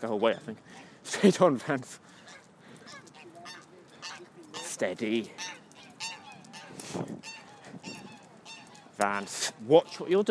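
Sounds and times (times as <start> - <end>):
speech: 0.0 - 2.2, 4.8 - 5.5, 9.0 - 10.2
soft outdoor background: 0.0 - 10.2
several geese honking: 2.0 - 10.2.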